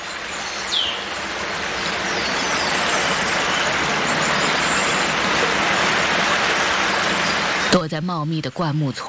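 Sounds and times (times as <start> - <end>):
babbling flowing water: 0.0 - 7.8
speech: 7.8 - 9.0.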